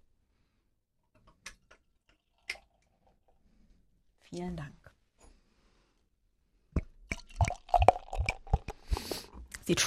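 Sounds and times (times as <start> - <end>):
speech: 4.3 - 4.8, 9.7 - 9.8
beer glugging from a bottle: 6.8 - 9.0.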